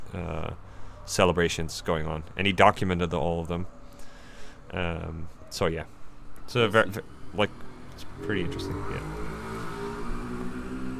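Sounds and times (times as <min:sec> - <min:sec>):
road noise: 0:00.0 - 0:10.9
speech: 0:00.1 - 0:03.8, 0:04.7 - 0:09.2
car driving past: 0:06.8 - 0:10.9.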